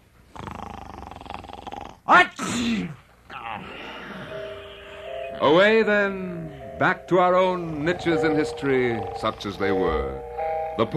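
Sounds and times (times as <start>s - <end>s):
speech: 2.1s - 3.0s, 5.4s - 10.9s
person acting out a loud sneeze: 2.3s - 3.7s.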